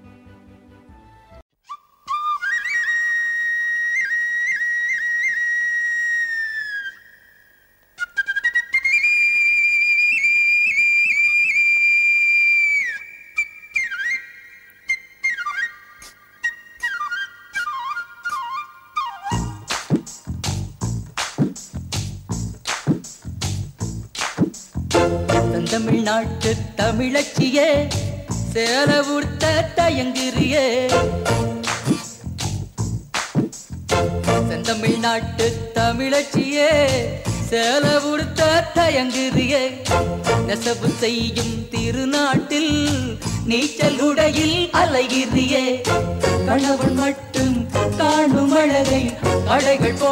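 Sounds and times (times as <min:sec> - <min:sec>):
high whistle-like melody of a Tamil song intro: 0:01.6 - 0:20.2
loud driving percussion: 0:19.4 - 0:50.1
speech: 0:25.8 - 0:31.4, 0:35.0 - 0:47.2, 0:48.0 - 0:50.1.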